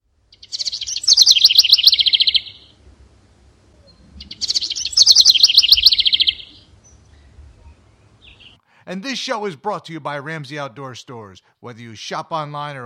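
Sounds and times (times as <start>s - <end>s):
male house wren singing bubbling rapid trilled song: 0.3s - 2.8s, 3.7s - 8.6s
speech: 8.9s - 12.8s.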